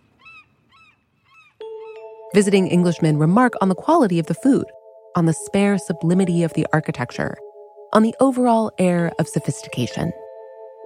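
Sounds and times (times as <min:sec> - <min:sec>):
seagulls crying: 0:00.1 - 0:02.2
steady ringing tone: 0:01.6 - 0:10.8
speech: 0:02.3 - 0:10.2.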